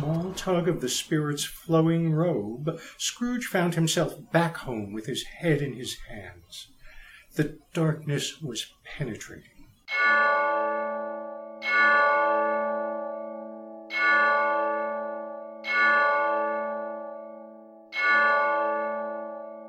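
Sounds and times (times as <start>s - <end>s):
speech: 0.4s - 6.7s, 7.4s - 11.0s, 11.6s - 12.4s
deep clock bell striking: 9.9s - 19.6s.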